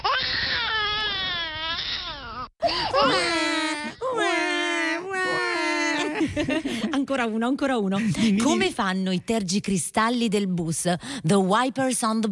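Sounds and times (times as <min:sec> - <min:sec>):
babies crying on a bus: 0:00.0 - 0:06.1
speech: 0:06.4 - 0:12.3.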